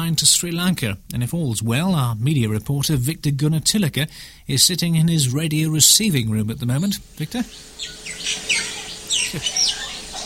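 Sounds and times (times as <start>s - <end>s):
speech: 0.0s - 9.8s
chorus of tropical birds calling in a garden in Sri Lanka: 6.6s - 10.2s.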